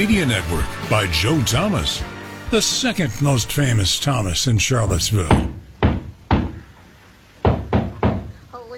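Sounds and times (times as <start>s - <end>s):
sustained sung-sounding voice: 0.0s - 5.5s
speech: 0.0s - 5.6s
loud knocking on a door: 5.3s - 6.6s, 7.4s - 8.3s.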